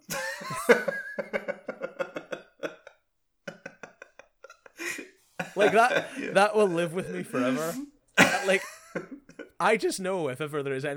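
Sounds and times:
laughter: 0.0 - 9.6
person imitating an aggressive coughing fit: 4.9 - 6.4, 7.1 - 9.5
speech: 5.6 - 8.7, 9.6 - 10.9.

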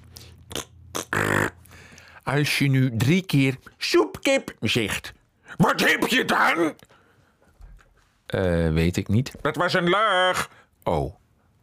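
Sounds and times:
fart sound made with the mouth, short puffs and buzzy raspberry: 0.5 - 1.7
speech: 2.3 - 6.9, 8.3 - 11.2.

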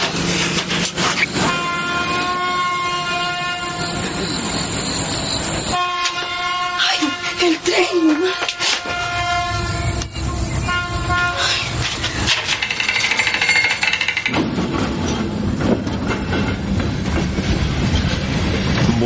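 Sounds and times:
train rumble and rail clatter passing a level crossing: 0.0 - 19.0
train horn blaring at a level crossing: 1.4 - 5.0, 5.6 - 11.9.

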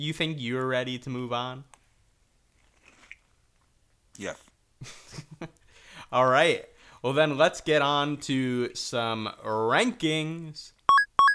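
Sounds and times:
speech: 0.0 - 1.8, 4.2 - 10.8
crunchy food being chewed: 2.5 - 3.4.

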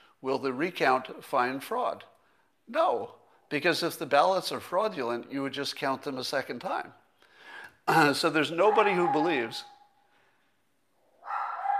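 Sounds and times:
speech: 0.2 - 2.1, 2.7 - 7.0, 7.9 - 9.7
dog bark from downstairs: 8.7 - 9.5, 11.2 - 11.7.

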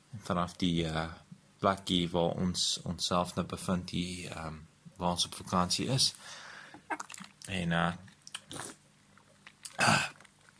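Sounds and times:
speech: 0.3 - 8.8
person slurping a drink: 6.8 - 7.3, 8.3 - 8.8
soft wet mouth clicks: 6.8 - 7.5, 8.2 - 10.5.

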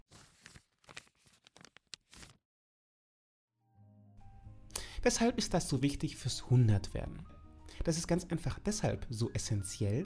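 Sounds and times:
paper crumpling and tearing: 0.0 - 2.4
speech: 5.0 - 10.0.

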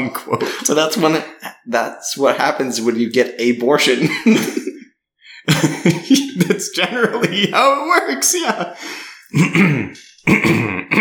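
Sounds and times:
speech: 0.0 - 4.6, 5.4 - 10.9
laughter: 3.8 - 4.8, 5.5 - 8.8
person with something stuck in the throat clearing throat: 9.3 - 10.9.

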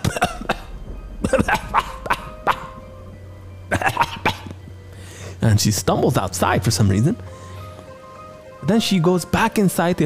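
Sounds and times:
man coughing harshly: 0.0 - 2.9, 3.7 - 4.6
low steady hum: 0.0 - 8.4
speech: 5.5 - 7.4, 8.7 - 10.0.

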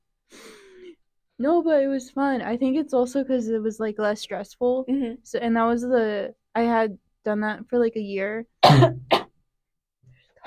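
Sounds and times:
speech: 1.4 - 9.1
loud cough from a person wearing a mask into a microphone: 8.6 - 9.3.

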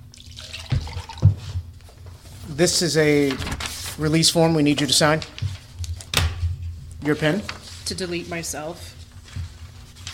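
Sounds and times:
soft wet water trickling: 0.0 - 1.2
speech: 2.6 - 5.4, 7.1 - 8.9.

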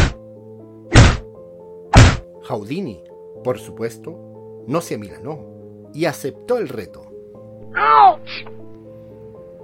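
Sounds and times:
heavy dull punches to a man's stomach: 0.0 - 0.2, 0.9 - 1.3, 1.9 - 2.3
speech: 2.5 - 7.1, 7.8 - 8.6.

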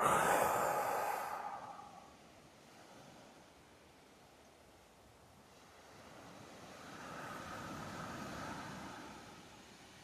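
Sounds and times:
deep breath in and out during a guided breathing exercise: 0.0 - 2.1.

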